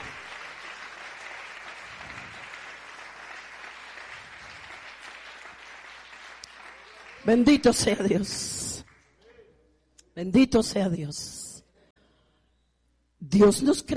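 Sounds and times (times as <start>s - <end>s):
audience applauding: 0.0s - 7.5s
speech: 7.2s - 8.6s, 10.2s - 11.4s, 13.3s - 13.9s.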